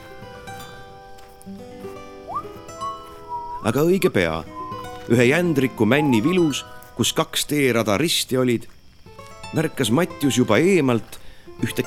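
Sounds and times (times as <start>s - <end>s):
person whistling while walking through a forest: 2.2s - 6.7s
speech: 3.6s - 8.8s, 9.5s - 11.8s.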